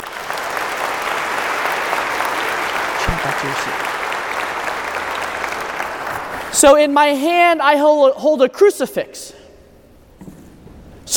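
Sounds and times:
audience applauding a child: 0:00.0 - 0:06.6
speech: 0:03.2 - 0:04.0, 0:06.5 - 0:09.4.

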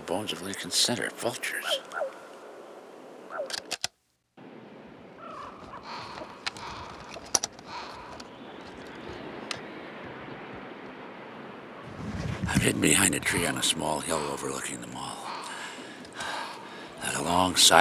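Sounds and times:
steady outdoor noise: 0:00.0 - 0:17.7
speech: 0:00.1 - 0:02.2, 0:12.6 - 0:15.3, 0:17.1 - 0:17.7
flock of blackbirds calling over a park: 0:01.2 - 0:02.4, 0:05.2 - 0:09.6, 0:12.8 - 0:17.7
sharp clicks: 0:03.4 - 0:04.0, 0:06.1 - 0:09.6.

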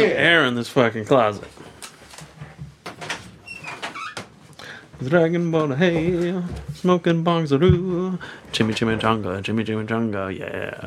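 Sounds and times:
speech: 0:00.0 - 0:01.7, 0:05.0 - 0:10.8
door creaking and squeaking as it is pulled open: 0:02.8 - 0:04.5.

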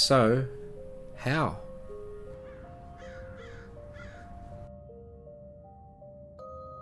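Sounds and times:
speech: 0:00.0 - 0:00.6, 0:01.2 - 0:01.6
crows cawing: 0:01.9 - 0:04.7.

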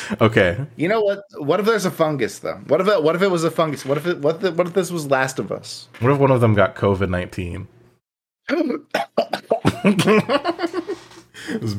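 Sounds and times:
speech: 0:00.1 - 0:07.8, 0:08.5 - 0:11.7
harsh raspy coughing fit: 0:08.5 - 0:10.0
laughter: 0:09.6 - 0:11.7.

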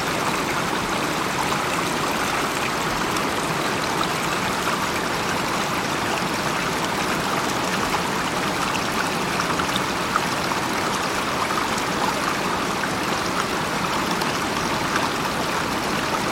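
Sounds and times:
faint brighter water trickles and splashes: 0:00.0 - 0:16.3
gentle stream flowing: 0:00.0 - 0:16.3.

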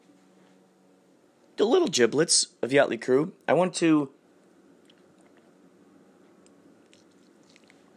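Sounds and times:
steady low hiss: 0:00.0 - 0:07.9
speech: 0:01.6 - 0:04.2
person drinking a glass of ozonated water: 0:04.8 - 0:05.6, 0:06.4 - 0:07.9.

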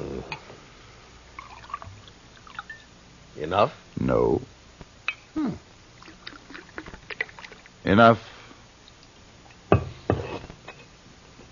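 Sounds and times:
liquid pouring into a glass: 0:01.4 - 0:02.9, 0:06.0 - 0:07.7
speech: 0:03.4 - 0:04.6, 0:07.9 - 0:08.3.

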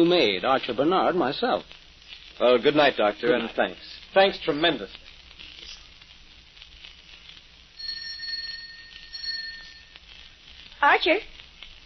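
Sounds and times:
speech: 0:00.0 - 0:01.8, 0:02.4 - 0:05.0, 0:10.8 - 0:11.4
faint hissy background: 0:00.0 - 0:11.8
electric doorbell ringing: 0:07.8 - 0:10.0.

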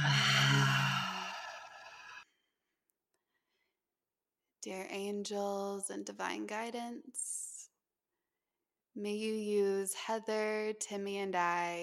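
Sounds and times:
deep breath taken and let out during a calm prayer: 0:00.0 - 0:02.2
speech: 0:04.6 - 0:07.5, 0:09.0 - 0:11.8.

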